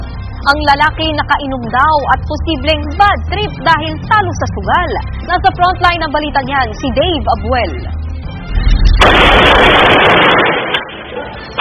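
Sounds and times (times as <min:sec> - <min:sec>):
speech: 0:00.4 - 0:08.0
low rumbling: 0:06.3 - 0:10.6
rapid AK-47 rifle fire: 0:09.0 - 0:11.2.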